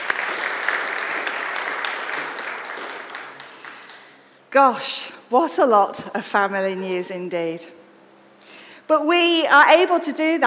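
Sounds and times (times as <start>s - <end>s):
congregation clapping in a round of applause: 0.0s - 4.4s
speech: 4.5s - 7.8s, 8.9s - 10.4s.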